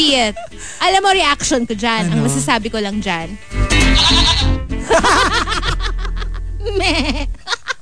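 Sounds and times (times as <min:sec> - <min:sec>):
speech: 0:00.1 - 0:05.5, 0:06.7 - 0:07.4
person imitating goat bleats: 0:01.6 - 0:02.7, 0:03.8 - 0:04.6
laughter: 0:04.8 - 0:07.8.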